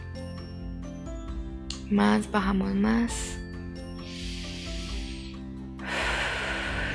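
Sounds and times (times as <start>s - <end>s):
soft sustained tonal background: 0.0s - 6.9s
speech: 1.9s - 3.4s
slow deep inhalation through the nose and breathy exhale: 3.9s - 6.9s.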